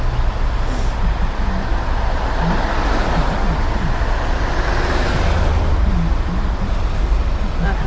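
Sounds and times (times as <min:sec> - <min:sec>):
low engine drone: 0:00.0 - 0:07.8
road traffic rumbling at a traffic light: 0:00.0 - 0:07.8
vehicles passing: 0:00.0 - 0:07.8.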